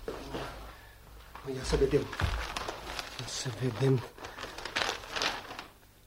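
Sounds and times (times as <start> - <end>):
newspaper pages rustling as it is opened: 1.3 - 5.8
speech: 1.5 - 2.5, 3.2 - 4.2.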